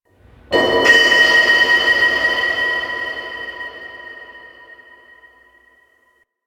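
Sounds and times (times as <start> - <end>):
metal hub hit: 0.5 - 5.6.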